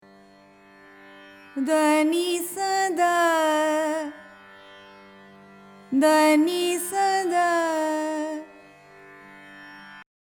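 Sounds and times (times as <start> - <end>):
Carnatic music: 0.0 - 10.1.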